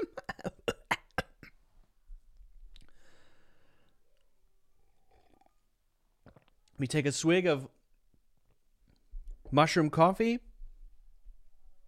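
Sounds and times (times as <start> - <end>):
harsh throat clearing: 0.0 - 1.6
speech: 6.8 - 7.8, 9.5 - 10.5.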